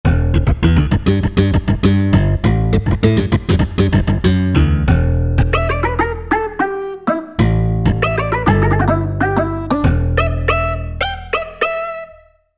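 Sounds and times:
slap acoustic bass: 0.0 - 11.9
Korg MSC-8S percussion: 5.6 - 10.8.

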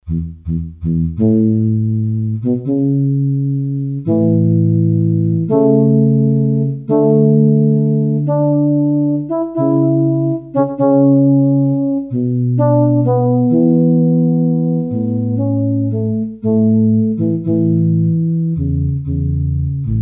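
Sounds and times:
French horn factory patch on Korg DS-8 synthesizer: 0.0 - 19.9.

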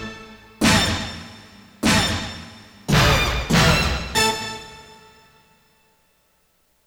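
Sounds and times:
band hit: 0.6 - 4.6.

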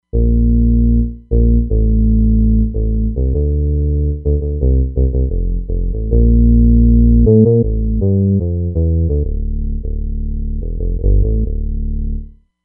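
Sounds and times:
R&B bass on a Roland Fantom XR: 0.0 - 12.4.

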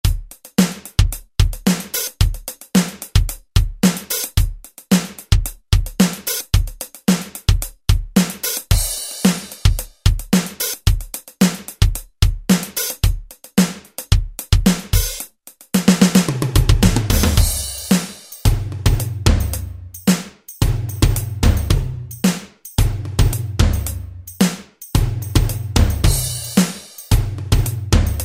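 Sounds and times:
funky user pattern on an Alesis SR-16: 0.0 - 28.2.

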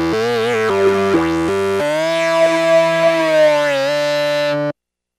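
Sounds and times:
fuzz buzz: 0.1 - 4.6.

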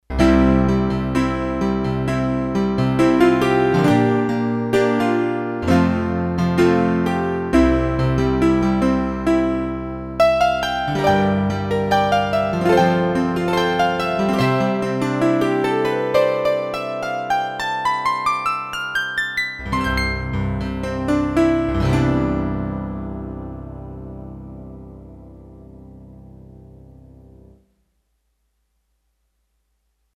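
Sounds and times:
rich piano sound on Roland D-10: 0.0 - 27.6.

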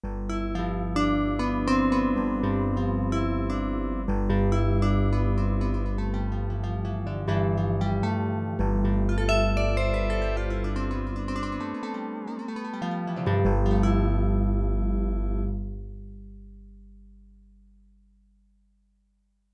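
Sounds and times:
vibraphone in unison with guitar on Yamaha TX16W sampler, jazz: 0.1 - 15.6
guitar in unison with vibraphone on Yamaha TX16W sampler, jazz: 0.1 - 15.8.

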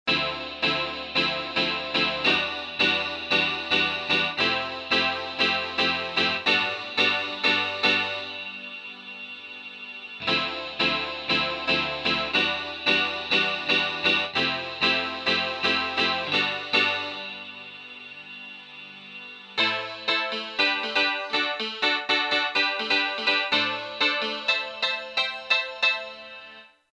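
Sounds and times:
odd piano from a sound module: 0.1 - 8.8, 10.2 - 18.3, 19.5 - 26.8.

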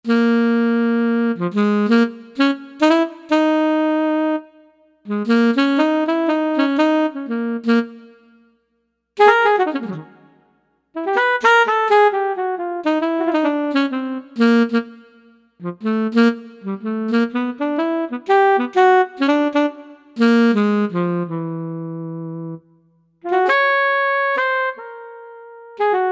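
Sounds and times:
alto saxophone: 0.0 - 8.6, 9.2 - 26.0.

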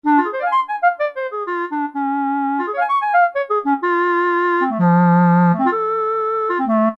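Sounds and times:
clarinet on an E-mu PK-6: 0.0 - 6.9.

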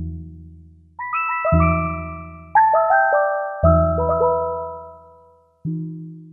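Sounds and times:
synthesizer sound: 1.0 - 5.1.

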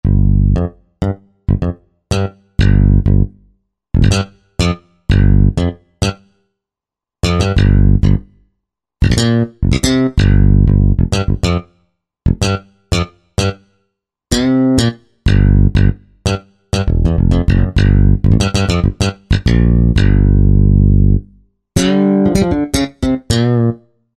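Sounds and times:
slap bass: 0.0 - 3.4, 4.0 - 6.2, 7.2 - 8.4, 9.0 - 11.6, 12.3 - 13.6, 14.3 - 23.8.

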